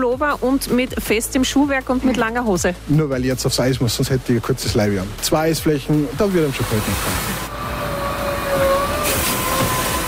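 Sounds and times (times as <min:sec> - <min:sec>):
speech: 0:00.0 - 0:07.4
ice resurfacing machine driving over the rink at an ice hockey academy: 0:06.5 - 0:10.0.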